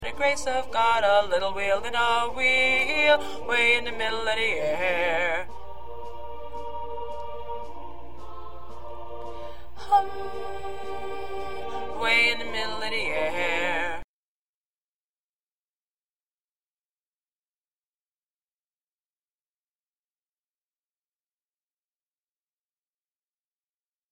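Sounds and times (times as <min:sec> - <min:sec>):
solo baritone singing: 0:00.0 - 0:05.5, 0:09.8 - 0:14.0.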